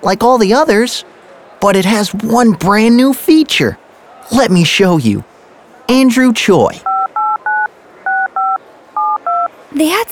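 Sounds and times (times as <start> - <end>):
speech: 0.0 - 5.3, 5.9 - 6.9, 9.7 - 10.1
two-tone telephone dialing beeps from a phone auto-dialing a number: 6.8 - 9.5.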